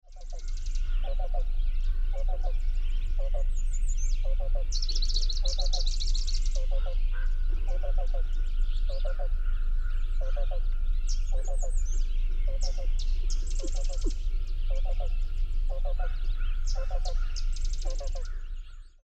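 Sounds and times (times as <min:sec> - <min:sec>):
Black-billed Cuckoo calling at sewage ponds: 0:00.0 - 0:19.0.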